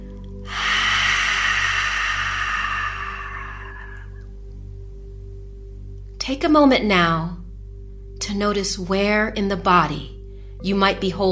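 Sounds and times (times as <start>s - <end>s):
long slow exhalation through the mouth during a relaxation exercise: 0.4s - 4.3s
constant low hum: 0.4s - 6.0s
speech: 6.3s - 7.4s, 8.3s - 11.3s.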